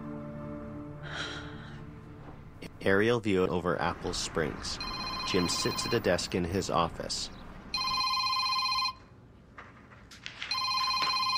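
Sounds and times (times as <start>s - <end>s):
speech: 2.8s - 7.4s
office telephone ringing with a bright trilling electronic bell: 4.8s - 6.1s, 7.7s - 9.1s, 10.5s - 11.3s.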